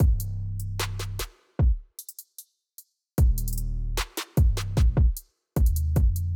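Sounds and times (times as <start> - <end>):
808 drum machine beat: 0.0 - 0.3, 1.6 - 2.4, 3.2 - 6.3.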